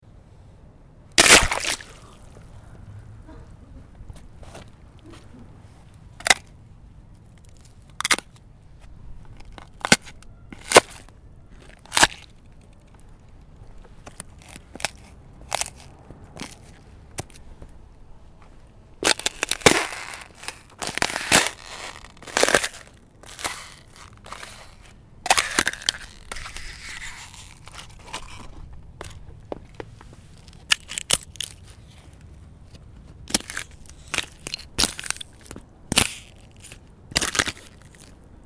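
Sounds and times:
ice cracking and snapping: 1.2 - 2.5, 6.2 - 6.5, 7.4 - 8.4, 9.3 - 13.0, 13.8 - 17.4, 19.0 - 29.3, 30.4 - 38.3.

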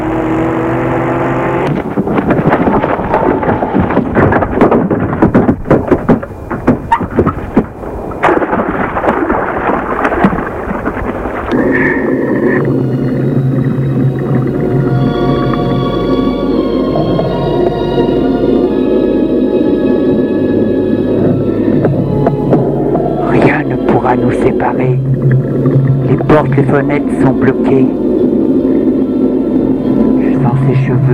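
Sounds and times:
underwater drone as car sinks: 0.0 - 31.1
car roaring and crashing heavily into a lake: 1.7 - 12.1
speech: 26.7 - 28.0.

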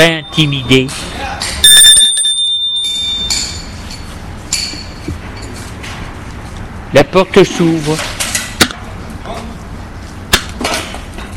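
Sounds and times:
speech: 0.0 - 1.5, 6.9 - 8.2
doorbell ringing at the door of an old one-storey presbytery: 1.6 - 3.8.

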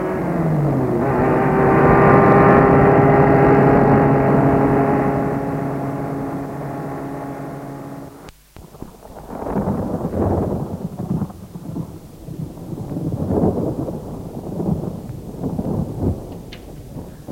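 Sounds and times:
deep rolling thunder: 0.0 - 17.3
steady wash of rain: 0.0 - 17.3.

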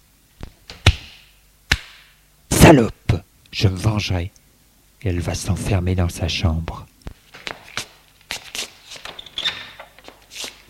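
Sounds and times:
sharp slapping impacts across the face: 0.4 - 2.0
speech: 2.7 - 4.4, 5.0 - 6.9.

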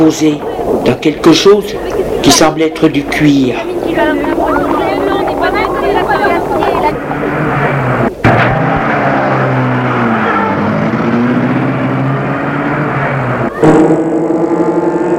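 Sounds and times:
speech: 0.0 - 4.8
car engine rumble while driving: 0.0 - 15.1
road noise: 0.0 - 15.1
sharp thump: 8.2 - 8.9.

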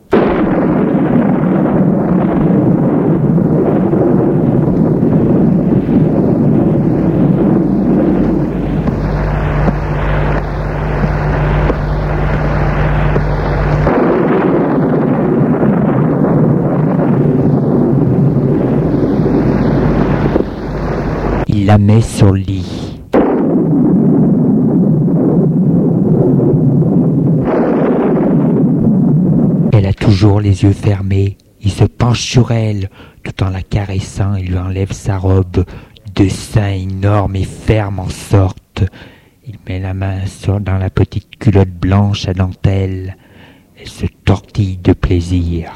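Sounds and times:
deep rolling rumbles of thunder: 0.0 - 21.5, 22.9 - 29.9
steady gusting wind: 0.0 - 40.5
speech: 30.4 - 39.1, 39.7 - 43.2, 43.8 - 45.7.

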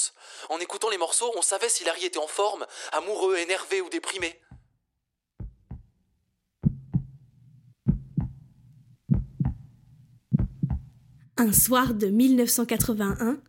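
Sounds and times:
speech: 0.5 - 4.6, 11.4 - 13.4
heartbeat-like thudding paired low beats in a dance track break: 5.4 - 5.9, 6.6 - 12.1, 12.8 - 13.4
sustained low bass hum: 5.4 - 5.9, 6.6 - 11.3.

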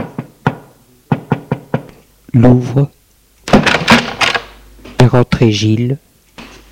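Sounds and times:
knocking on a wooden door: 0.0 - 1.9
speech: 2.3 - 3.0, 5.1 - 6.0.

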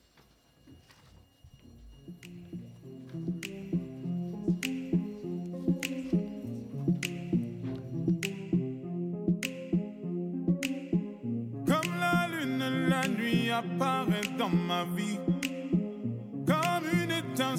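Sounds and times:
crisp evenly spaced snap-like percussion hits: 2.2 - 6.3, 6.9 - 7.5, 8.1 - 8.6
instrumental pop intro with layered chords and melodic line: 2.2 - 17.5
speech: 13.6 - 15.3.

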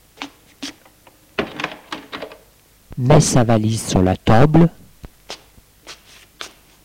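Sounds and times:
hotel room door pushed shut with firm thud: 1.4 - 2.4
speech: 3.0 - 4.8.

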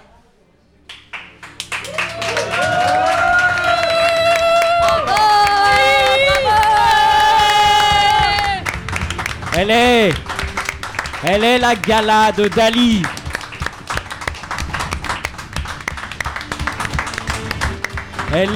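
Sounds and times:
loud sustained applause from a large audience in a standing ovation: 1.0 - 18.5
cheering and whooping voices: 1.8 - 8.7
speech: 9.6 - 10.3, 11.2 - 13.2, 18.3 - 18.5.

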